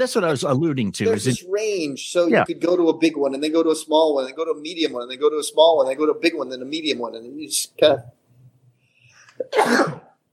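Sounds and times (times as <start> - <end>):
speech: 0.0 - 8.2, 9.4 - 10.0
person sneezing: 9.4 - 10.1.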